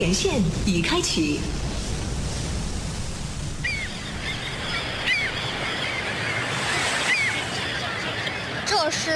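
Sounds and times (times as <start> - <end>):
speech: 0.0 - 1.7, 8.9 - 9.1
ocean waves at a naval harbor: 0.0 - 9.1
faint high bird calls: 3.6 - 9.1.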